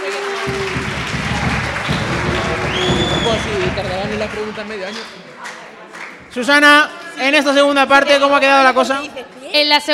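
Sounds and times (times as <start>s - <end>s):
whistles and cheers: 0.0s - 3.8s
audience applause: 0.0s - 6.4s
speech: 3.4s - 5.3s, 6.3s - 9.9s.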